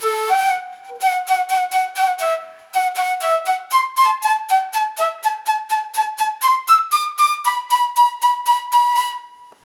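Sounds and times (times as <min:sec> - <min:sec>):
solo flute playing a rhythm: 0:00.0 - 0:09.7.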